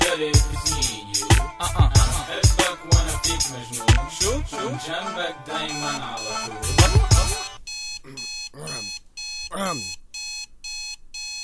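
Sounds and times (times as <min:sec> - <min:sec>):
speech: 0:00.2 - 0:00.8, 0:01.6 - 0:07.1, 0:09.5 - 0:10.0
electronic alarm clock beeping: 0:05.7 - 0:11.4.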